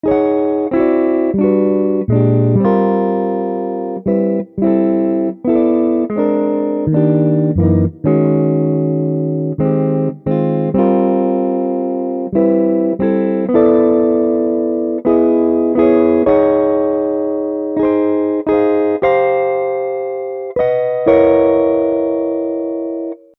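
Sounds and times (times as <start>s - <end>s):
jazz guitar: 0.0s - 23.3s.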